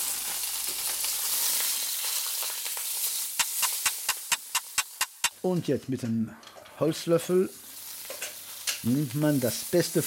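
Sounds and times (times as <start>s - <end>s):
Toulouse sausages or Mettwurst sausages frying in a pan: 0.0s - 5.4s, 7.2s - 10.0s
sharp evenly spaced taps: 3.4s - 5.4s
speech: 5.4s - 7.6s, 8.8s - 10.0s.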